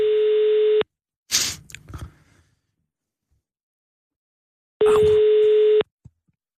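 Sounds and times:
steady electronic telephone tone: 0:00.0 - 0:00.9, 0:04.8 - 0:05.9.

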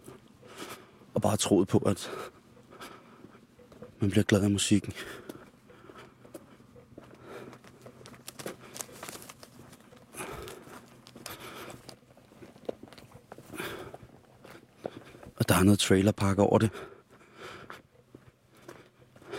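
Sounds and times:
speech: 0:01.2 - 0:02.4, 0:04.0 - 0:05.3, 0:15.6 - 0:16.9
footsteps through dry leaves on a path: 0:07.6 - 0:12.7.

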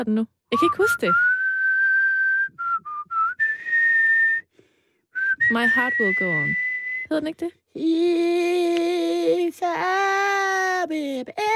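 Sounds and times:
speech: 0:00.0 - 0:01.3, 0:05.5 - 0:11.5
person whistling a pop tune: 0:00.6 - 0:04.5, 0:05.2 - 0:07.1.

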